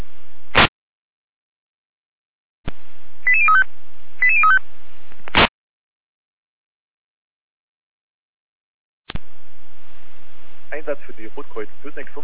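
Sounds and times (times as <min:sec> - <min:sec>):
German radio dispatch alerting tone sequence of rapid stepped beeps: 0:03.3 - 0:04.6
faint hiss of open radio channel: 0:09.1 - 0:12.2
speech: 0:10.8 - 0:12.2.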